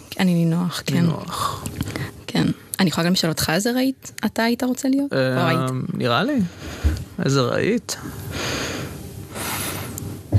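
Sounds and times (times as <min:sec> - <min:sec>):
speech: 0:00.2 - 0:01.8, 0:02.4 - 0:08.7
loud breathing into the microphone: 0:06.5 - 0:07.2, 0:08.2 - 0:10.3.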